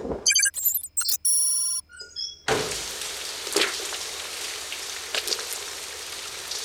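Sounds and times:
brief electronic chime-like jingle: 0.3 - 1.8
steady rain falling: 2.9 - 6.6.

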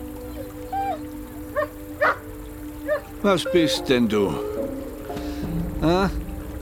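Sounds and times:
dog barking and yipping: 1.6 - 2.2
speech: 3.2 - 4.5, 5.8 - 6.2.

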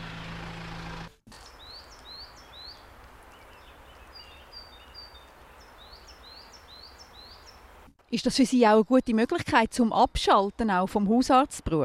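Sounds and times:
loud tractor engine drone: 0.0 - 1.5
birds whistling and chirping in the forest: 1.5 - 7.6
speech: 8.1 - 11.8.

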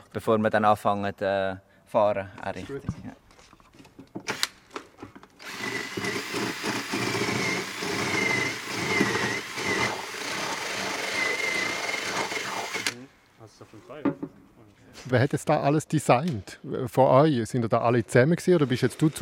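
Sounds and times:
speech: 0.2 - 3.2, 15.1 - 19.2
power drill boring a hole to mount a roll bar on a solar car: 5.4 - 13.0.

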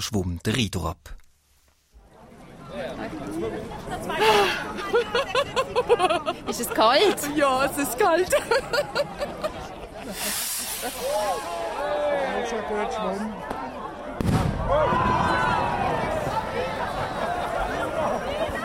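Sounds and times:
speech: 0.0 - 1.2, 2.8 - 9.4, 10.1 - 13.6, 14.7 - 15.3
crowd chatter and many voices talking: 2.0 - 18.6
laughter: 3.9 - 11.8, 15.9 - 18.6
loud firework bang as starting signal: 14.2 - 15.4.

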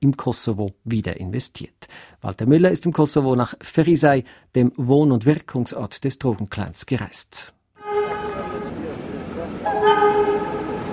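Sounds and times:
speech: 0.0 - 7.6
locomotive warning horn blasts in a small town in Kosovo: 7.8 - 10.9
train passing at walking pace through Ferizaj Kosovo: 7.9 - 10.9.

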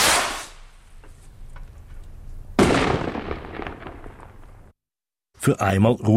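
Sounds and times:
fireworks banging outside: 0.0 - 4.7
speech: 5.4 - 6.1.

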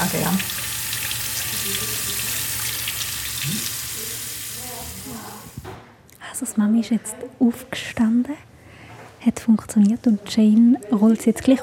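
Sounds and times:
running water splashing while washing a newborn: 0.0 - 5.6
speech: 6.4 - 8.5, 9.2 - 11.6.

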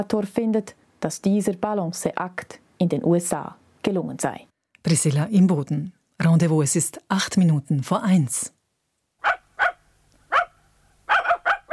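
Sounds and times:
speech: 0.0 - 8.6
dog barking sharply: 9.2 - 11.7.

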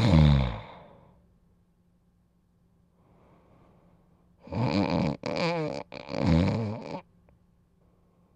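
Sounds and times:
loud rasping rattling snoring: 4.4 - 7.0.

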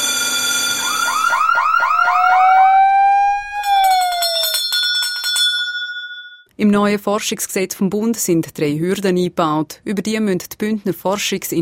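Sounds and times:
alarm bells ringing with warbling tones: 0.0 - 6.5
speech: 6.6 - 11.6.

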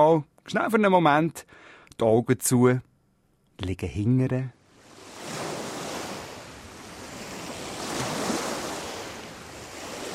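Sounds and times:
speech: 0.1 - 2.9, 3.6 - 4.6
ocean waves rushing on shore: 4.7 - 10.1.

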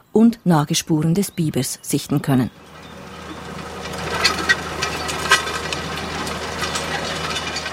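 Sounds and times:
speech: 0.2 - 2.8
diesel tractor engine running: 1.8 - 7.7
metallic clanks and rattles: 2.2 - 7.7.

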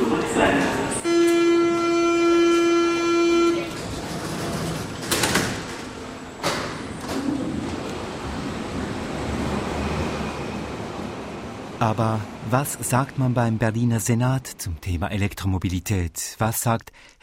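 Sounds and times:
subway train rumble: 0.0 - 16.0
loud sustained subway warning tone: 1.0 - 3.9
speech: 11.8 - 17.2.

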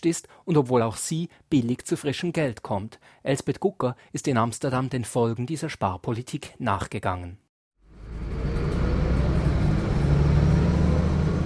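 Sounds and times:
speech: 0.0 - 7.4
road drone inside moving city bus: 7.8 - 11.4
city bus engine rumble: 7.9 - 11.4.

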